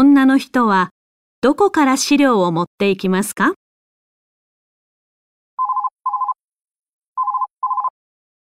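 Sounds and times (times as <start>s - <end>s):
speech: 0.0s - 3.6s
office telephone ringing with an electronic trilling tone: 5.6s - 6.4s, 7.2s - 8.0s.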